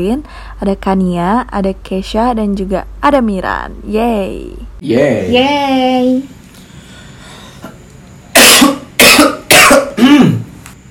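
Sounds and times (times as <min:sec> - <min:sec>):
speech: 0:00.0 - 0:06.4
loud harsh coughing: 0:08.3 - 0:10.6.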